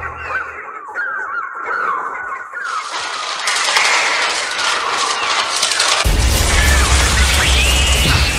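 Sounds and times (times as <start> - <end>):
dense swarm of birds shrieking and squawking: 0.0 - 8.3
heavy low rumble: 6.0 - 8.3.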